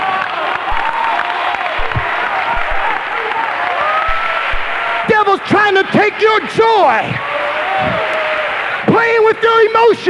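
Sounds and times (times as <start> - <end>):
cheers: 0.0 - 10.0
large crowd clapping and applauding: 0.0 - 10.0
low thumps: 0.7 - 1.2, 1.8 - 3.4, 4.1 - 5.3
speech: 5.1 - 8.1, 9.0 - 10.0.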